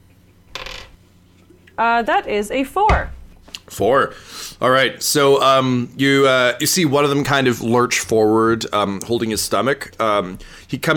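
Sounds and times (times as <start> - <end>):
eight-sided die rolling across a hard tabletop: 0.5 - 1.0
speech: 1.8 - 10.9.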